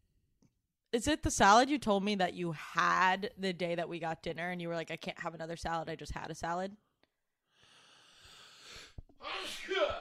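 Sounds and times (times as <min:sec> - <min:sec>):
speech: 0:00.9 - 0:06.9
person sneezing: 0:09.2 - 0:09.9.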